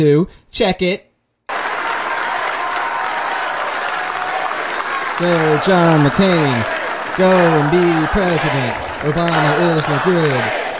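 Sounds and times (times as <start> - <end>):
speech: 0.0 - 1.1, 5.2 - 10.6
crowd cheering and clapping at a political rally: 1.5 - 10.7.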